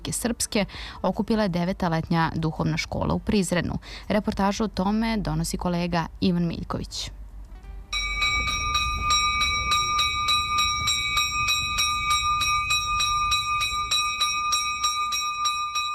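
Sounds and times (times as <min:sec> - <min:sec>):
speech: 0:00.0 - 0:07.2
church bell ringing: 0:07.9 - 0:15.9.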